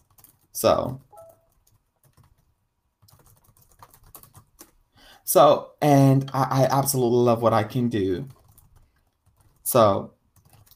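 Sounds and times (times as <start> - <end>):
typing on a computer keyboard: 0.0 - 4.8, 8.2 - 10.7
speech: 0.6 - 1.1, 5.3 - 8.4, 9.7 - 10.2.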